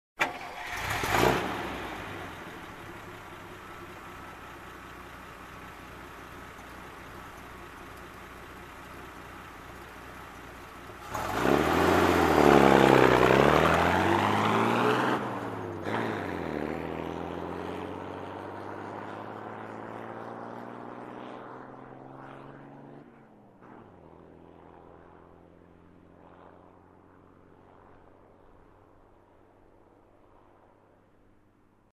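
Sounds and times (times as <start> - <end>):
military jeep engine starting and driving away: 0.2 - 16.3.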